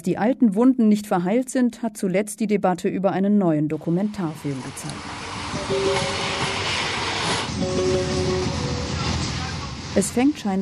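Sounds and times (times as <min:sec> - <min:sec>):
speech: 0:00.0 - 0:06.4, 0:10.0 - 0:10.6
train rolling along rails with rumble and hiss: 0:04.3 - 0:10.6
drawn-out rising whining tones: 0:05.1 - 0:09.7.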